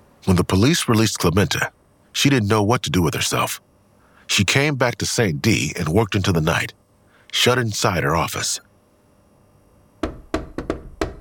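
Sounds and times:
speech: 0.2s - 3.7s, 4.3s - 8.7s
firm knocks on an office door at night: 10.0s - 11.1s.

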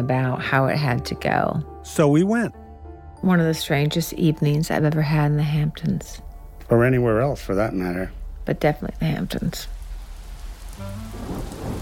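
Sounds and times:
speech: 0.0s - 2.6s, 3.2s - 9.8s
deep thunder rumbling: 4.8s - 11.8s
heavy rain pouring: 6.6s - 11.8s.

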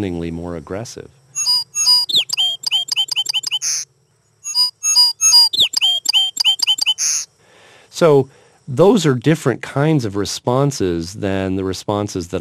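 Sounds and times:
speech: 0.0s - 1.2s, 8.0s - 12.3s
song sparrow singing: 1.4s - 3.8s, 4.4s - 7.3s.

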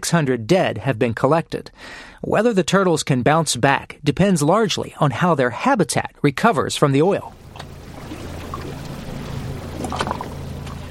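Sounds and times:
speech: 0.0s - 7.7s
boat engine drone running across water: 7.3s - 10.8s
water sloshing and splashing near the hull: 7.3s - 10.8s.

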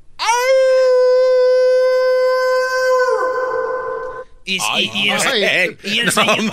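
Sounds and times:
person imitating a wolf howl: 0.3s - 4.2s
speech: 4.5s - 6.5s
laughter: 5.1s - 6.5s.

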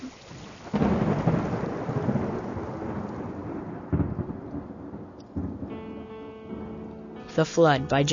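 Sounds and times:
steady rain: 0.0s - 5.9s
thunder rumbling: 0.4s - 6.8s
speech: 7.4s - 8.1s.

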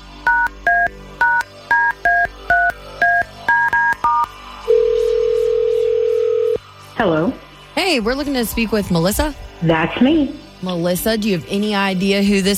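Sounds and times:
steady unbroken phone tone: 0.3s - 6.6s
speech: 7.9s - 12.5s.

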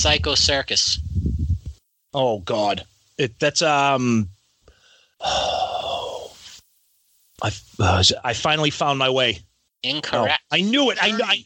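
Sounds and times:
speech: 0.0s - 1.3s, 2.1s - 4.3s, 5.2s - 5.7s, 7.4s - 11.4s
brief vocal sound: 5.2s - 6.6s.

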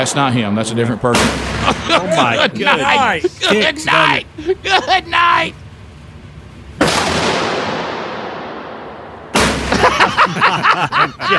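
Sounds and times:
speech: 0.0s - 5.6s, 10.4s - 11.3s
gigantic pistol firing: 1.1s - 1.7s, 6.8s - 9.9s
laughter: 1.5s - 5.5s, 9.6s - 11.3s.

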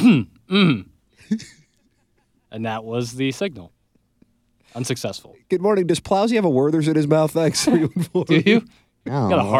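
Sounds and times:
person clearing throat, loud and gravelly: 0.0s - 1.6s
speech: 0.0s - 1.6s, 2.5s - 3.8s, 4.7s - 9.5s.

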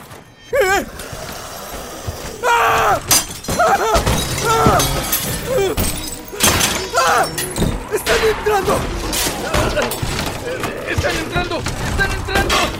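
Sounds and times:
people moaning and groaning: 0.4s - 12.7s
doors being smashed: 2.3s - 12.7s
glass shattering: 2.7s - 12.7s
speech: 8.2s - 8.9s, 9.8s - 12.7s.

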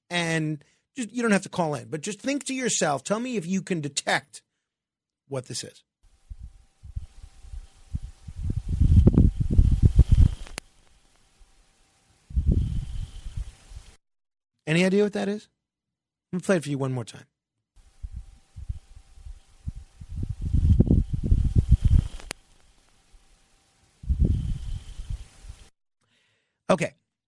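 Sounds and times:
speech: 0.4s - 4.5s, 5.3s - 5.9s, 14.7s - 15.6s, 16.3s - 17.3s, 26.7s - 27.0s
dust devil whirlwind on Mars roaring: 6.3s - 10.6s, 12.3s - 13.4s, 18.0s - 22.3s, 24.0s - 25.2s.

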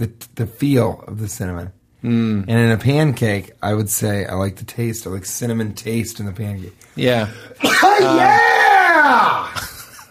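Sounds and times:
speech: 0.0s - 9.7s
person sneezing: 7.5s - 8.3s
loud drawn-out yell rising and falling in pitch: 7.6s - 9.6s.

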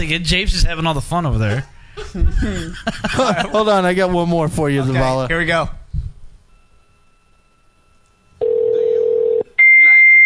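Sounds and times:
speech: 0.0s - 5.8s
laughter: 2.0s - 3.8s
electronic telephone keypad tones: 8.0s - 9.5s.

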